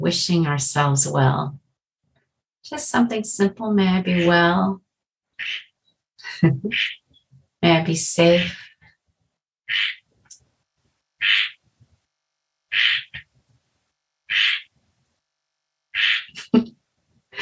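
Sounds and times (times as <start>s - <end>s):
speech: 0.0s - 1.6s, 2.6s - 4.8s, 5.4s - 7.0s, 7.6s - 8.7s, 9.7s - 10.0s
frog croaking outside a window: 5.4s - 5.8s, 6.7s - 7.0s, 9.7s - 10.1s, 11.2s - 11.6s, 12.7s - 13.3s, 14.3s - 14.7s, 15.9s - 16.4s.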